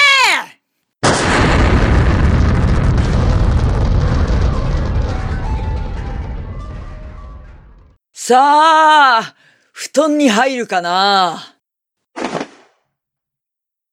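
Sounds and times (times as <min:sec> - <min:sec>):
grenade explosion: 0:01.0 - 0:08.0
speech: 0:08.3 - 0:11.5.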